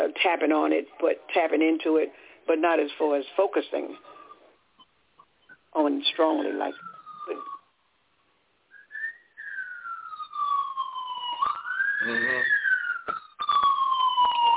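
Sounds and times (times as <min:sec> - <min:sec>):
speech: 0:00.2 - 0:04.2, 0:05.8 - 0:07.5, 0:12.0 - 0:12.6
police siren wailing in Los Angeles: 0:06.0 - 0:07.7, 0:08.9 - 0:14.5.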